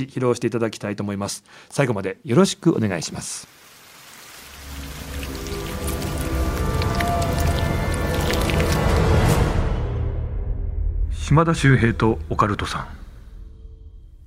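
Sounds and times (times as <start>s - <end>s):
speech: 0.0s - 3.6s, 11.3s - 13.0s
steady dense rainfall pattering and splashing: 2.7s - 9.3s
faint eerie sustained tones of a spooky show jingle: 4.6s - 14.2s.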